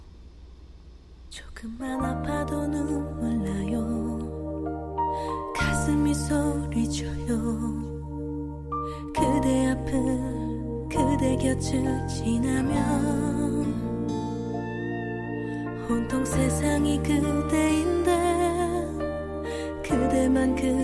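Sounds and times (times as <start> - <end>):
speech: 1.3 - 4.0, 5.9 - 7.9, 11.2 - 13.9, 15.9 - 18.0, 19.9 - 20.8
slow pop ballad sung by a woman: 1.4 - 8.1, 8.8 - 14.7, 15.4 - 20.8
sustained chords and deep bass line: 2.2 - 20.8.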